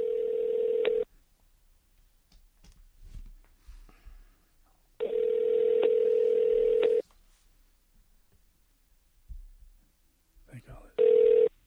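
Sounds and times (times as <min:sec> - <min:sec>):
electronic telephone ring tones through the line: 0:00.0 - 0:01.1, 0:05.0 - 0:07.0, 0:11.0 - 0:11.5.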